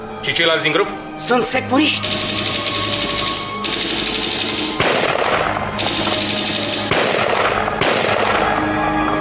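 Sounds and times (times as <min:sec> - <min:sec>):
speech: 0:00.2 - 0:02.4
dense rumbling continuous gunfire: 0:02.0 - 0:09.0
gunshots in an exchange of gunfire on a mountain: 0:02.0 - 0:09.1.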